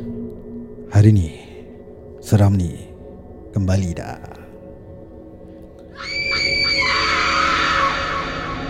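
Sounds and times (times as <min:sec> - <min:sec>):
speech: 0:00.9 - 0:01.5, 0:02.2 - 0:02.9, 0:03.5 - 0:04.4
person screaming: 0:06.0 - 0:08.6.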